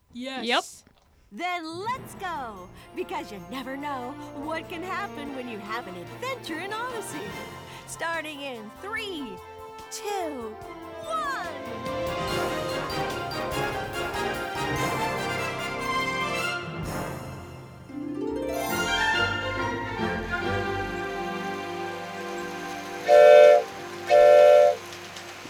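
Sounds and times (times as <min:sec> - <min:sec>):
speech: 0:00.2 - 0:12.2
toy train running on its track: 0:01.8 - 0:16.1, 0:20.1 - 0:25.4
toy train whistle toots: 0:02.0 - 0:17.0, 0:18.8 - 0:25.4.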